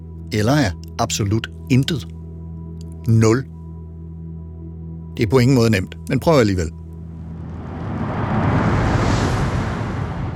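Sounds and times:
speech: 0.3s - 2.2s, 3.0s - 3.5s, 5.2s - 6.8s
deep rumbling explosion sound effect representing the Big Bang: 7.0s - 10.3s.

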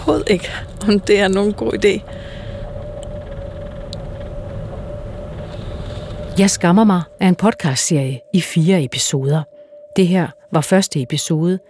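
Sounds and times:
car rolling slowly into a farmyard: 0.0s - 7.8s
speech: 0.1s - 2.4s, 6.4s - 11.6s.

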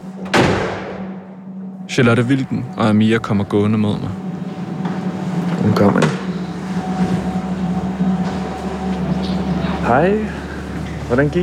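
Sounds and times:
main entrance hall door opening clunk: 0.0s - 1.6s
steady low hum: 0.0s - 11.4s
speech: 1.9s - 4.2s, 5.7s - 6.2s, 9.9s - 10.4s, 11.1s - 11.4s.

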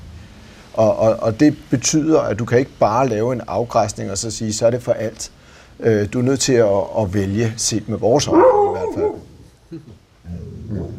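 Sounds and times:
speech: 0.8s - 10.9s
hunting dog growling: 8.3s - 10.9s.

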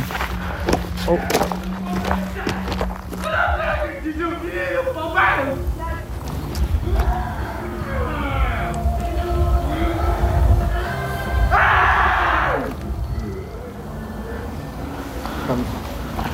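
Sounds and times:
traffic rumble: 0.0s - 16.3s
voices: 0.0s - 16.3s
people shouting and screaming in the street: 1.0s - 13.3s
speech: 1.1s - 1.4s.

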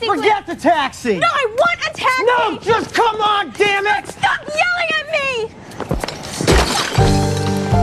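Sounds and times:
people arguing in a TV drama scene: 0.0s - 5.5s
speech: 0.0s - 5.6s
glass bottles smashing in a TV drama scene: 5.9s - 7.7s.

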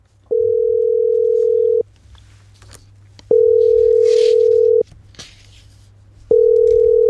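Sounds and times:
faint low hum: 0.0s - 7.0s
telephone ringback tone while a call is placed: 0.3s - 1.8s, 3.3s - 4.8s, 6.3s - 7.0s.

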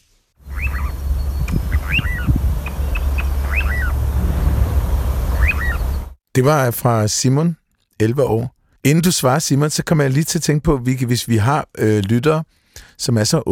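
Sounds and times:
little ringed plover calling with down-slurred whistles: 0.4s - 4.2s, 4.8s - 6.1s
steady low rumble: 0.4s - 6.2s
speech: 6.4s - 13.5s.

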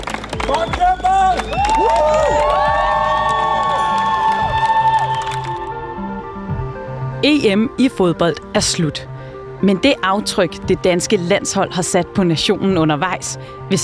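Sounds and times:
fans clapping: 0.0s - 5.7s
large crowd of fans cheering and shouting at an airport arrival: 0.4s - 5.9s
speech: 7.2s - 13.8s.

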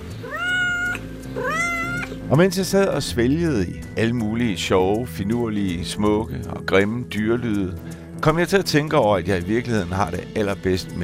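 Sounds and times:
cat meowing: 0.2s - 2.2s
speech: 2.3s - 11.0s.

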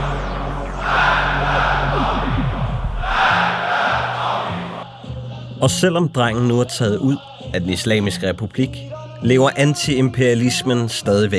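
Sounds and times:
low rumble: 0.0s - 4.8s
large demonstration crowd in Iran chanting in unison: 0.0s - 5.3s
speech: 5.6s - 11.3s.

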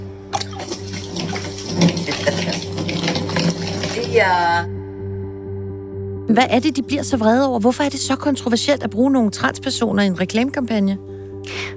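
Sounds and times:
beer pouring out onto the ground as part of a boycott: 0.3s - 4.2s
speech: 4.2s - 4.8s, 6.3s - 11.7s.

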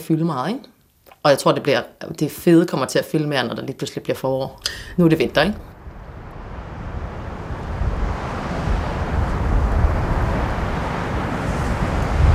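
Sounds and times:
speech: 0.0s - 5.7s
winter surf breaking along the shore: 4.7s - 12.3s
steady winter wind buffeting the microphone at the shore: 5.2s - 12.3s.

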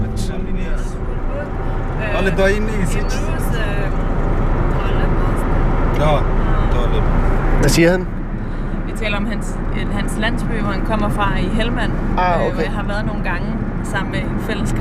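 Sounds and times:
car horns honking in dense road traffic: 0.0s - 8.0s
moving car engine and road rumble on the road into Kandahar: 0.0s - 14.8s
vehicles passing in dense road traffic: 0.0s - 14.8s
speech: 0.3s - 4.1s, 6.0s - 8.2s, 9.0s - 14.8s.

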